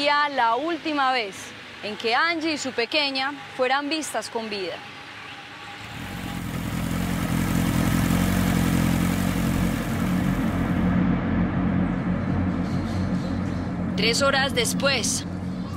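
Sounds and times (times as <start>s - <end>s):
speech: 0.1s - 5.0s, 14.0s - 15.3s
motorcycle engine droning: 5.6s - 15.6s.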